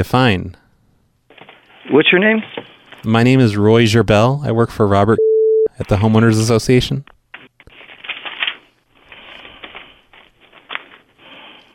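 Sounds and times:
speech: 0.0s - 0.6s, 1.9s - 7.1s
crinkly paper rustling with crackles and soft snaps: 1.3s - 3.1s, 7.3s - 11.7s.

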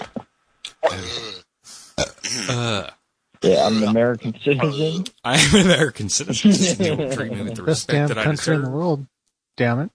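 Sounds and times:
loud drawn-out throaty burp: 0.8s - 3.0s
speech: 0.9s - 1.5s, 2.3s - 9.9s
laughter: 4.7s - 8.5s.

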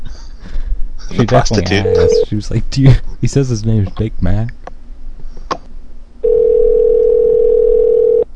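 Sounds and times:
faint low noise: 0.0s - 8.3s
speech: 1.1s - 4.6s
steady single-pitch telephone call tone: 1.8s - 2.3s, 6.2s - 8.3s.

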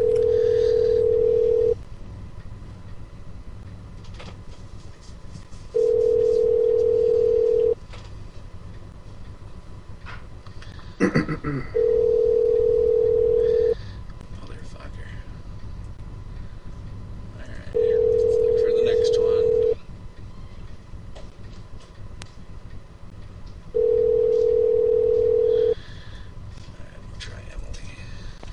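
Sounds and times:
telephone ringback tone on an outgoing call: 0.0s - 1.8s, 5.8s - 7.8s, 11.8s - 13.8s, 17.8s - 19.8s, 23.8s - 25.8s.

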